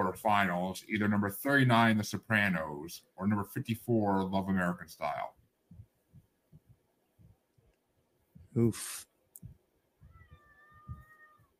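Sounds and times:
speech: 0.0 - 5.4, 8.6 - 9.1
soft low thumps: 5.4 - 8.6, 9.4 - 11.5
cat meowing: 10.0 - 11.5.

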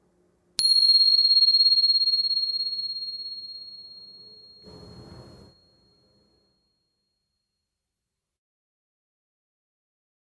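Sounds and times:
bright meditation bell ringing during guided meditation practice: 0.6 - 6.0.

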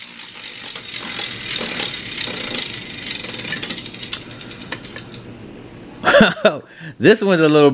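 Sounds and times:
prize wheel spinning and clicking: 0.0 - 5.3
laughter: 6.0 - 6.6
speech: 6.2 - 7.7.

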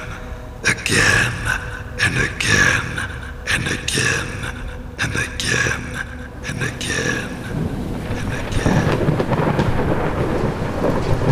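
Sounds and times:
heavy torrential rain on a storm-swept road at night: 0.0 - 11.3
speech: 0.9 - 2.4
deep rumbling thunder: 7.3 - 11.3.

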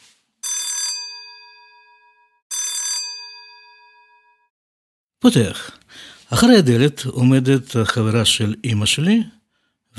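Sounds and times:
doorbell ringing at a home in a suburb of Krasnoyarsk Siberia: 0.4 - 4.5
speech: 5.2 - 9.4.

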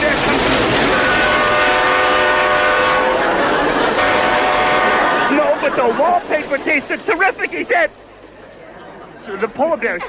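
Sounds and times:
loud train rumbling past: 0.0 - 10.0
sustained horn-like tone of a train: 0.9 - 5.3
laughter: 2.9 - 10.0
speech: 6.0 - 8.1, 9.2 - 10.0.

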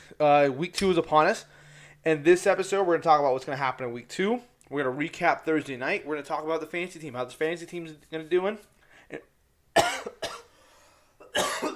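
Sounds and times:
speech: 0.2 - 9.3
throat clearing: 9.1 - 10.5, 11.2 - 11.7
person coughing: 9.1 - 10.6, 11.2 - 11.7.

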